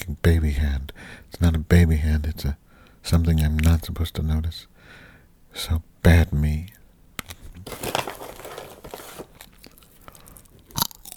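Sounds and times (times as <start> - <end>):
speech: 0.2 - 6.8
person crunching and chewing Peruvian popcorn kernels: 7.3 - 11.1.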